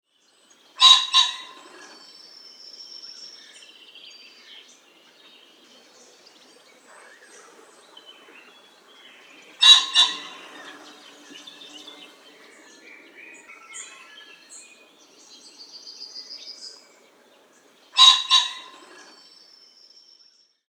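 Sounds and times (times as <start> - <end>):
pheasant calling: 0.8 - 2.2, 4.8 - 19.4.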